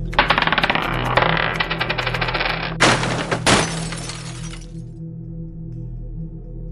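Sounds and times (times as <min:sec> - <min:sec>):
object falling and shattering: 0:00.1 - 0:04.8.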